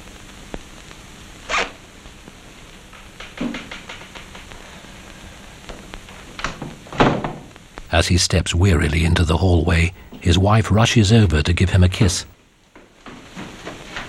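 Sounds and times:
briefcase zipper being pulled shut: 1.5s - 1.8s
small clicks and rustles: 2.6s - 6.8s
speech: 7.9s - 12.4s.

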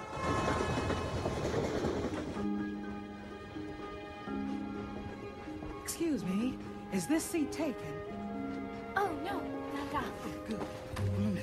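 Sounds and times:
train rumbling along its rails: 0.0s - 7.3s
speech: 6.0s - 8.2s, 9.1s - 11.4s.

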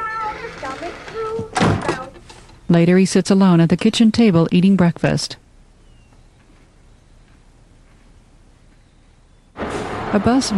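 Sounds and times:
closet door shutting with a dull thunk: 0.3s - 2.1s
speech: 0.6s - 1.5s, 2.7s - 5.4s, 10.1s - 10.5s.

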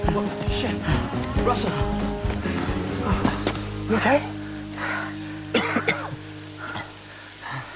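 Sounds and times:
speech: 0.2s - 2.1s, 3.9s - 5.0s
man breathing roughly, struggling to recover: 2.2s - 5.5s, 6.5s - 7.7s
man coughing: 5.5s - 7.0s.

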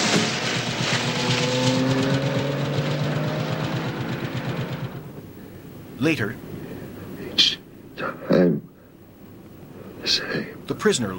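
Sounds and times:
car engine rumbling as the vehicle drives off at night: 0.0s - 6.0s
speech: 6.0s - 6.5s, 10.1s - 11.1s.

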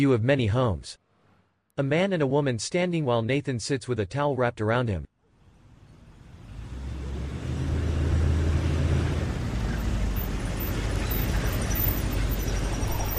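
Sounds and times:
speech: 0.0s - 1.0s, 1.8s - 5.1s
broadband road noise: 5.3s - 13.1s
truck engine rumbling while pulling up and parking: 5.6s - 13.1s.

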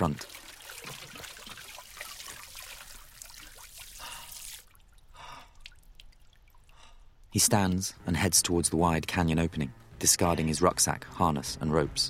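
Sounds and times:
speech: 0.0s - 0.4s, 7.3s - 12.0s
murky water trickling as a man fills his bottle: 0.0s - 7.8s.

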